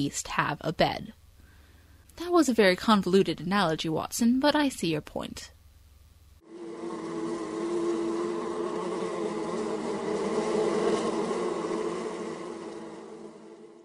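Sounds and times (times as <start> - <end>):
speech: 0.0 - 1.2, 2.2 - 5.6
bee buzzing: 6.4 - 13.8.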